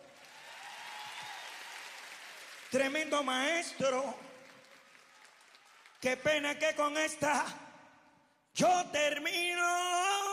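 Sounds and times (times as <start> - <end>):
concert audience applauding an orchestra in Santiago: 0.0 - 6.6
speech: 2.7 - 4.3, 6.0 - 7.6, 8.6 - 10.2.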